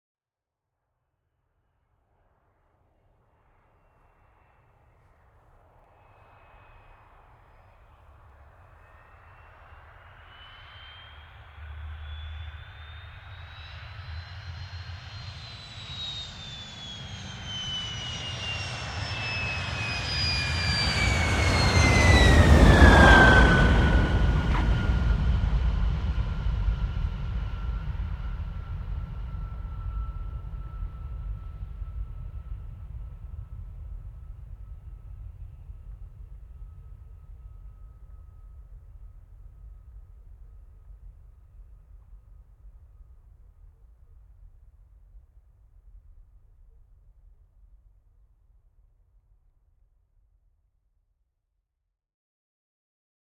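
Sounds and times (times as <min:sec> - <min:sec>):
MiG-15 UTI jet trainer landing: 0:08.8 - 0:40.9.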